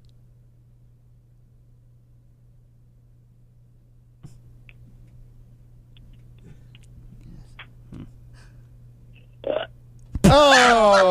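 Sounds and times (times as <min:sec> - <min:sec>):
small mouth and breath noises: 0:06.3 - 0:08.7
loud drawn-out burp: 0:09.4 - 0:09.7.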